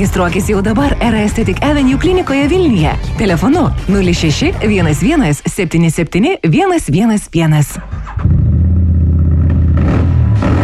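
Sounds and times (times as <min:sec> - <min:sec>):
speech: 0:00.0 - 0:08.0
street adventure motorcycle engine revving: 0:08.0 - 0:10.6.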